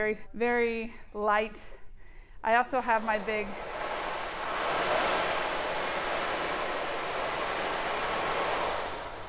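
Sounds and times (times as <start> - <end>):
speech: 0.0 - 1.8, 2.4 - 3.8
ocean drum swishing beads: 2.5 - 9.2.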